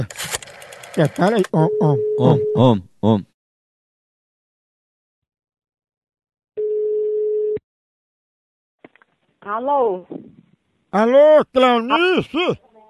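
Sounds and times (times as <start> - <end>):
speech: 0.0 - 0.3, 1.0 - 3.3, 9.4 - 12.6
brief vocal sound: 1.4 - 3.3
telephone call tone as a number is rung: 1.6 - 2.6, 6.6 - 7.6.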